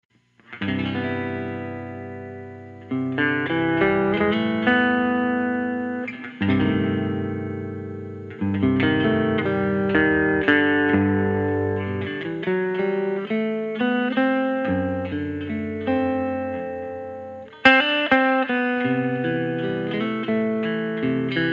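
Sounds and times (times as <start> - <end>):
teal archtop guitar playing: 0.4 - 21.5.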